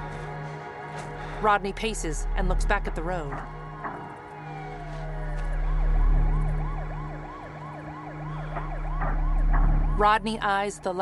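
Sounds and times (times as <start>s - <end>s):
emergency vehicle sirens wailing in a yelp pattern: 0.0s - 11.0s
steady low road rumble: 0.0s - 11.0s
speech: 1.4s - 3.6s, 10.0s - 11.0s.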